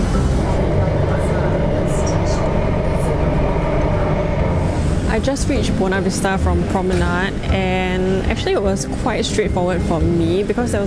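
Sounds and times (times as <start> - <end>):
metro train rumbling at the platform: 0.0 - 10.8
speech: 5.2 - 10.8.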